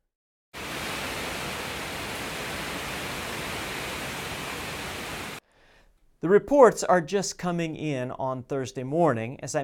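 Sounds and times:
heavy storm rain: 0:00.6 - 0:05.4
storm wind roaring: 0:00.6 - 0:05.4
speech: 0:06.2 - 0:09.6.

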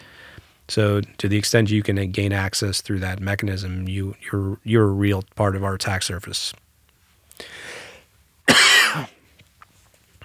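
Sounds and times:
speech: 0:00.7 - 0:06.6
person coughing: 0:08.5 - 0:09.2.

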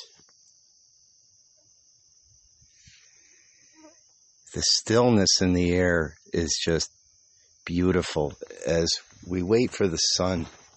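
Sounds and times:
crickets chirping before dawn on a hilltop: 0:00.0 - 0:10.7
faint rustle: 0:02.3 - 0:04.2, 0:09.0 - 0:10.7
speech: 0:04.5 - 0:07.0, 0:07.7 - 0:10.6.

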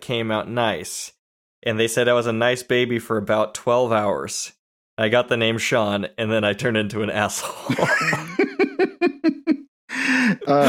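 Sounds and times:
speech: 0:00.1 - 0:08.6, 0:10.5 - 0:10.6
person laughing: 0:07.5 - 0:10.6
person gasping in surprise: 0:09.9 - 0:10.6.

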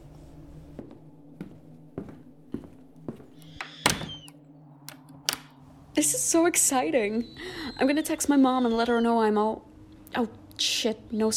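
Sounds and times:
doors of a haunted house being shut and locked: 0:03.0 - 0:05.7
door bang with creaking rattling edge: 0:03.4 - 0:04.3, 0:04.9 - 0:05.5
speech: 0:06.0 - 0:11.3.

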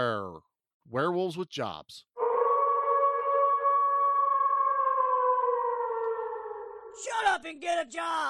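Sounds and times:
speech: 0:00.0 - 0:02.1, 0:07.0 - 0:08.2
loud sustained siren-like wail with layered tones in a segment intro: 0:02.2 - 0:07.0.

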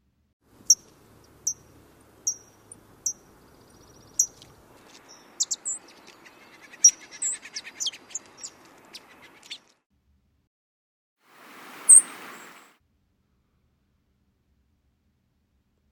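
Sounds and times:
faint steady outdoor noise: 0:00.0 - 0:10.5, 0:11.2 - 0:15.9
bird chirps: 0:00.7 - 0:09.7, 0:11.8 - 0:12.7
fox sparrow sip calls: 0:02.2 - 0:09.6, 0:11.6 - 0:12.7.

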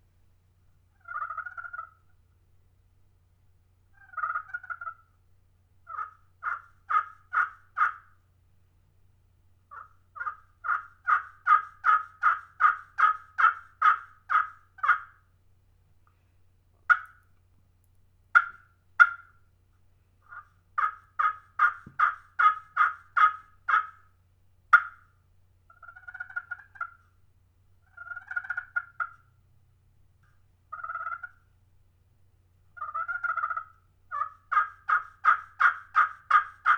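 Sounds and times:
turkey yelps played on the slate surface of a custom friction turkey call: 0:01.0 - 0:02.1, 0:04.0 - 0:05.1, 0:05.9 - 0:08.2, 0:09.7 - 0:15.2, 0:16.9 - 0:17.2, 0:18.4 - 0:19.4, 0:20.3 - 0:24.1, 0:24.7 - 0:25.1, 0:25.7 - 0:27.0, 0:27.8 - 0:29.2, 0:30.7 - 0:31.5, 0:32.8 - 0:36.7.

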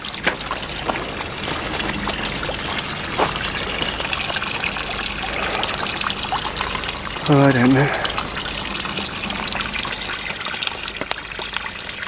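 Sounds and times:
stream water trickling and babbling: 0:00.0 - 0:12.0
speech: 0:07.3 - 0:08.0.

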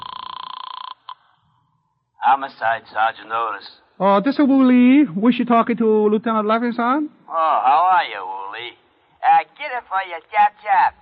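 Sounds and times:
telephone ringing over the line with warbling electronic tone: 0:00.0 - 0:01.4
speech: 0:02.3 - 0:08.7, 0:09.7 - 0:11.0.

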